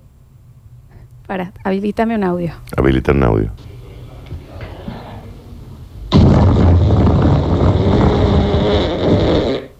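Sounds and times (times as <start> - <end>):
speech: 1.3 - 3.7
person blowing a raspberry imitating a fart: 6.1 - 9.7.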